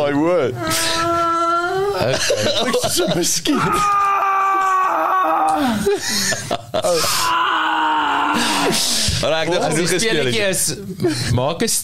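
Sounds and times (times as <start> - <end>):
speech: 0.1 - 1.1, 2.0 - 4.1, 5.6 - 7.4, 8.4 - 11.8
woman moaning in pain: 0.6 - 2.3, 3.6 - 6.1, 6.8 - 9.1
laughter: 1.8 - 3.8, 5.6 - 7.4.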